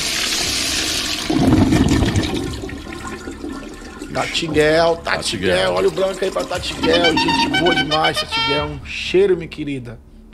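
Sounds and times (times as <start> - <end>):
toilet flushing: 0.0 - 8.2
speech: 4.2 - 10.3.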